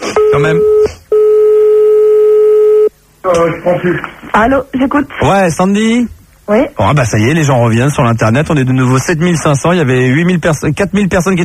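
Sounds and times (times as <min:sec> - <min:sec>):
telephone line tone while a caller is being called back: 0:00.0 - 0:02.9
speech: 0:00.3 - 0:00.8, 0:03.3 - 0:11.4.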